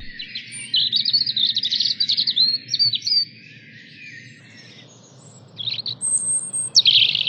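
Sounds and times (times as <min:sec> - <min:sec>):
steady low outdoor rumble: 0:00.0 - 0:00.3
European robin calling and singing: 0:00.0 - 0:07.2.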